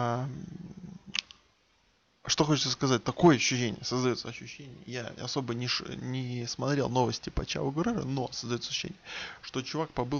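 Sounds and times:
speech: 0.0s - 0.6s, 2.3s - 10.1s
domestic cat soft low rumbling purr: 0.2s - 1.2s.

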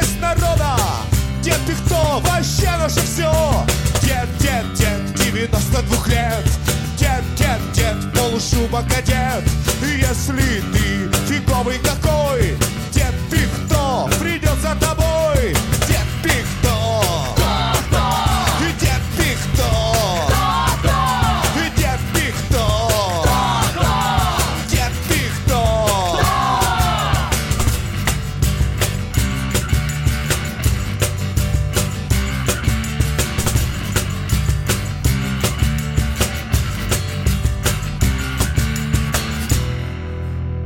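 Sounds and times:
full driving band playing: 0.0s - 40.5s
speech: 1.6s - 4.8s, 8.4s - 15.1s
audience in a bar singing along loudly: 17.4s - 19.1s, 20.0s - 21.9s, 23.0s - 27.6s.

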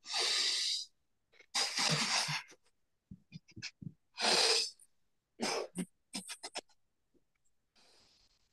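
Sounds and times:
loud nasal breathing in a yoga breathing exercise: 0.0s - 0.9s, 1.5s - 2.6s, 4.2s - 4.8s.

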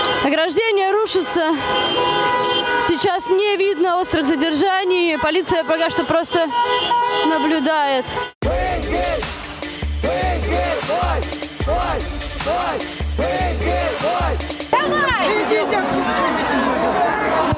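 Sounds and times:
speech: 0.2s - 9.2s, 10.9s - 17.2s
dense protest crowd chatter on a street: 10.1s - 17.5s.

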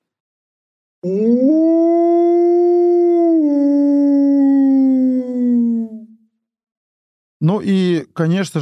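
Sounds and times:
speech: 1.0s - 1.6s, 7.4s - 8.6s
person imitating a polar wolf howl: 1.0s - 6.2s.

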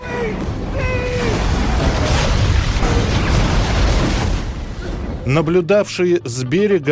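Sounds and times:
oil platform explosion and fire roaring rumble: 0.0s - 5.5s
speech: 5.3s - 6.8s.

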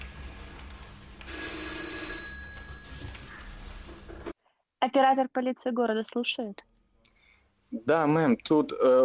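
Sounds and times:
telephone ringing: 1.2s - 3.2s
speech: 4.9s - 6.7s, 7.7s - 9.0s.

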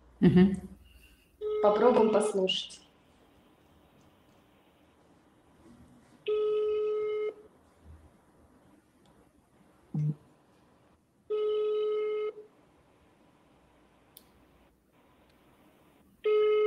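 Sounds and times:
speech: 0.2s - 0.7s, 1.6s - 2.8s
ringback tones of unanswered phone call on speakerphone: 1.4s - 2.4s, 6.3s - 7.4s, 11.3s - 12.4s, 16.2s - 16.6s.

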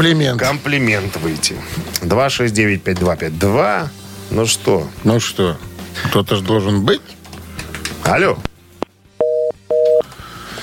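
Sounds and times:
speech: 0.0s - 7.2s, 8.0s - 8.5s
telephone busy tone after a dropped call on a radio phone-in line: 9.2s - 10.0s.

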